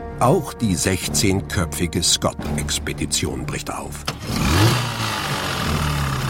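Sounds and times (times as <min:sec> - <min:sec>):
speech: 0:00.2 - 0:04.7
early motor sledges engine drone leading an Antarctic expedition: 0:04.1 - 0:06.2.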